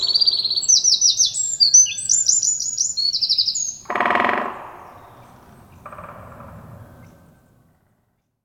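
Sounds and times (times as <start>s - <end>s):
Eurasian wren Troglodytes troglodytes singing: 0.0s - 5.9s.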